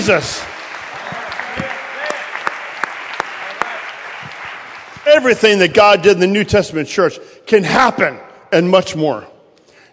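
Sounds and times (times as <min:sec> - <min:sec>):
speech: 0:00.0 - 0:00.5, 0:05.1 - 0:09.3
crowd clapping in a large space: 0:00.0 - 0:05.8.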